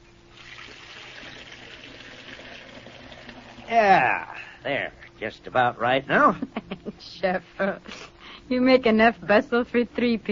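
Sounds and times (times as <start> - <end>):
water running from a tap into a tea kettle: 0.3 - 3.7
speech: 3.7 - 10.3.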